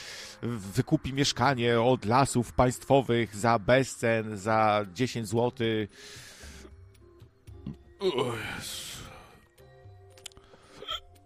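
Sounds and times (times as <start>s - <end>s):
speech: 0.4s - 6.3s, 7.7s - 9.0s
quiet breathy mouth sounds: 10.1s - 11.2s
hiccup: 10.8s - 11.2s.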